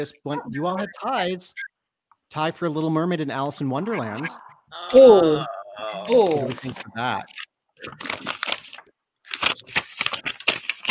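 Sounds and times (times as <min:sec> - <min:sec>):
speech: 0:00.0 - 0:01.7, 0:02.3 - 0:08.4
crisp paper rustling and crinkling: 0:06.1 - 0:10.8.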